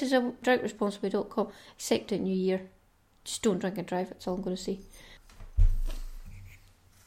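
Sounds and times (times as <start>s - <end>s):
speech: 0.0s - 5.1s
low thump: 5.4s - 6.2s.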